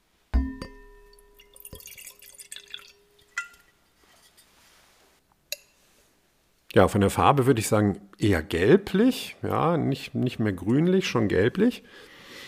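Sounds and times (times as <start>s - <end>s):
ringing clink of a wine glass: 0.4s - 4.5s, 5.5s - 5.8s
Riesling wine poured splashing into a glass: 0.6s - 3.8s
speech: 6.8s - 12.1s.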